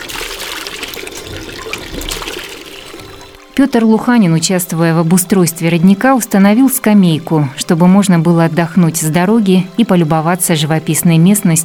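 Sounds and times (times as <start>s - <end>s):
water from hand pump gushing into bucket: 0.0s - 4.6s
speech: 3.6s - 11.6s.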